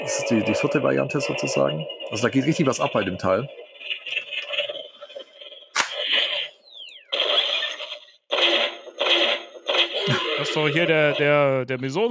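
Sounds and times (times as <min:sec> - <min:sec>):
speech: 0:00.0 - 0:04.2, 0:10.4 - 0:12.1
electronic toy playing spooky ghost sound effects: 0:00.0 - 0:11.5
shrill warbling tones: 0:00.0 - 0:11.6
sharp click: 0:05.8 - 0:06.0.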